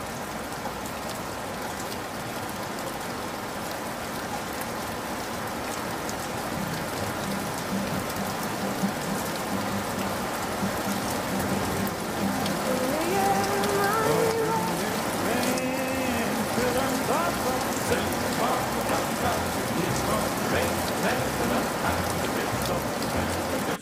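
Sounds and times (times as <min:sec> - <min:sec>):
rain pattering on a hard surface: 0:00.0 - 0:23.8
faint tonal voice-like sounds: 0:12.7 - 0:23.8.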